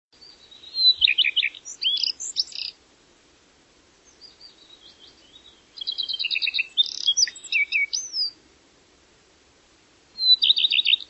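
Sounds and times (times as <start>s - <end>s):
bird song of quick trilled runs, buzzy chattering and upslurred whistles: 0.2s - 2.8s, 4.0s - 8.4s, 10.2s - 11.0s.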